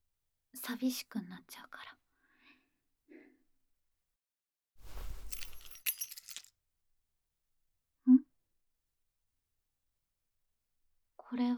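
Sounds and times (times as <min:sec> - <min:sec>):
speech: 0:00.6 - 0:02.0, 0:11.3 - 0:11.5
metal spare key clinking onto a hard surface: 0:04.9 - 0:06.5.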